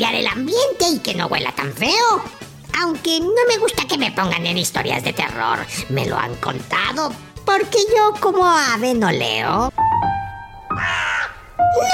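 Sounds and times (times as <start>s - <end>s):
speech: 0.0s - 9.7s, 11.7s - 11.9s
crow cawing harshly: 10.7s - 11.9s.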